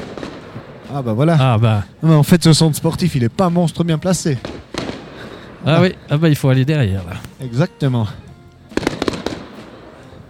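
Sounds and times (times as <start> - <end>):
fireworks at an outdoor display near a sports centre: 0.0 - 1.3, 3.4 - 6.2, 8.7 - 10.2
speech: 0.9 - 4.6, 5.6 - 8.2.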